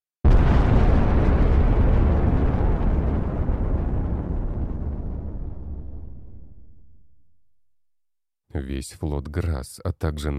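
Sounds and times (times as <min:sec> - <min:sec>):
massive explosion of a world covered in burning cracks: 0:00.2 - 0:07.5
speech: 0:08.6 - 0:10.3.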